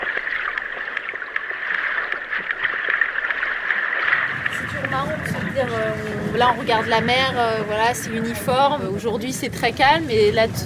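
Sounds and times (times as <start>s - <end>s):
sperm whale clicks recorded underwater from two whales feeding at depth: 0.0s - 8.3s
speech: 5.0s - 10.6s.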